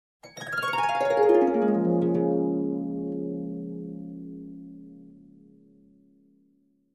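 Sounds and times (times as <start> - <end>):
descending harp glissando: 0.4 - 5.1.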